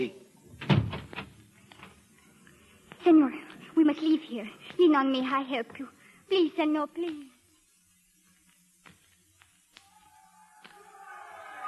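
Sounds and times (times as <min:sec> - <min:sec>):
speech: 0:00.0 - 0:00.7, 0:03.0 - 0:07.3
heavy door thudding shut: 0:00.5 - 0:01.4.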